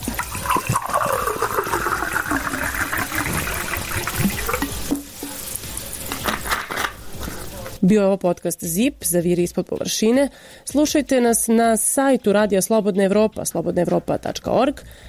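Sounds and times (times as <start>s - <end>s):
bottled water pouring into a glass in Zrenjanin Serbia: 0.0s - 4.9s
speech: 7.8s - 15.0s.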